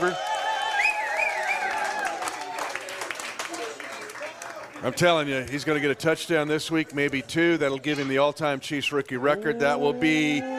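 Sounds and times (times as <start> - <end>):
studio audience cheering with whoops and shouts: 0.0 - 4.7, 9.3 - 10.5
studio audience clapping: 0.0 - 7.3
speech: 4.8 - 10.5.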